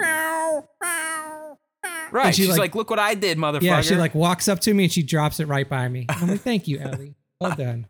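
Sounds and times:
person imitating cat meows: 0.0s - 2.6s
speech: 2.1s - 7.8s.

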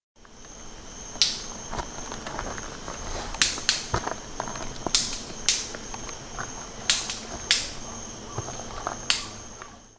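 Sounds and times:
steady high-pitched insect-like whine: 0.2s - 9.9s
rufous-vented ground cuckoo giving sharp dry snapping clicks: 3.4s - 3.9s, 4.9s - 5.7s, 6.9s - 7.8s, 9.0s - 9.7s.

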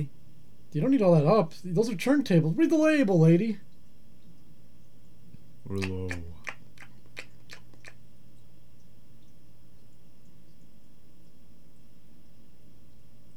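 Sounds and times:
speech: 0.0s - 3.7s, 5.7s - 6.3s
faint steady hum: 0.0s - 13.3s
gum being chewed in a radio studio: 5.3s - 8.0s.

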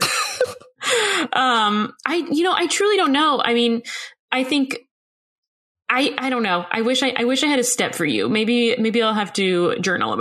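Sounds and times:
harsh cough: 0.0s - 0.7s
speech: 1.3s - 4.9s, 5.9s - 10.1s.

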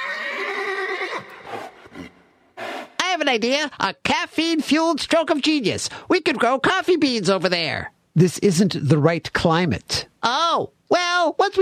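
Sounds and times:
horse neighing: 0.0s - 3.0s
horse snorting: 0.6s - 3.0s
speech: 3.3s - 11.5s.

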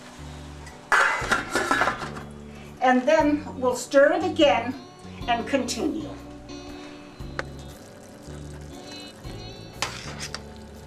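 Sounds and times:
metal lid set back onto a cooking pot of mushrooms: 0.9s - 2.3s
speech: 2.9s - 6.2s.

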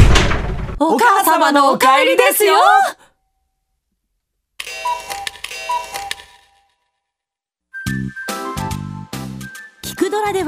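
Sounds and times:
speech: 0.8s - 3.0s, 10.1s - 10.4s
doorbell chiming: 4.7s - 6.7s.

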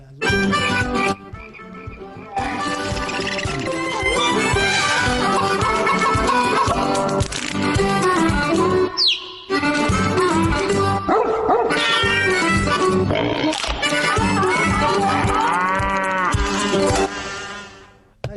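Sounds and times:
bouncy cartoon-style theme tune: 0.2s - 17.9s
laughter: 1.4s - 7.3s, 13.8s - 16.8s
dog barking: 11.1s - 11.8s.

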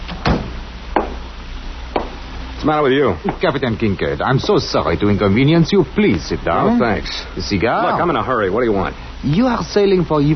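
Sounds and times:
faint hum: 0.0s - 10.3s
door opening with a heavy clunk: 0.1s - 0.6s
speech: 2.6s - 10.3s.

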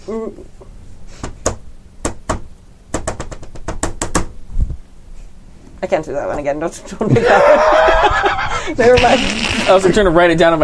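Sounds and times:
speech: 0.1s - 1.2s, 5.8s - 10.6s
rhythmic secret knock rapped on a hard surface: 1.2s - 4.3s
laughter: 7.0s - 9.9s.

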